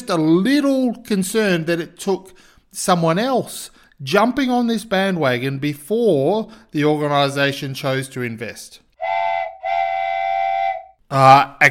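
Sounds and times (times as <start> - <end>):
speech: 0.1 - 8.8, 11.1 - 11.6
shrill whistle blasts: 9.0 - 11.0.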